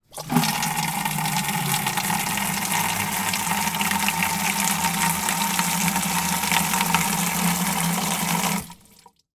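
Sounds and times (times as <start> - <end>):
household plastic watering can filling from water butt: 0.0 - 9.3.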